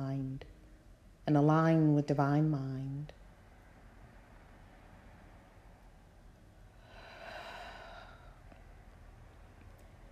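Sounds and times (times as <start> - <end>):
quiet hiss: 0.0 - 10.1
speech: 1.3 - 3.2
slow deep breath: 6.7 - 8.6.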